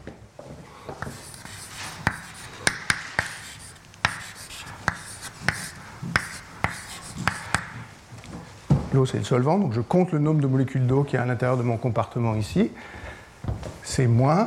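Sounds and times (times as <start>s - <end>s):
writing on a board during a lecture: 0.9s - 7.9s
speech: 9.0s - 13.0s, 13.9s - 14.4s.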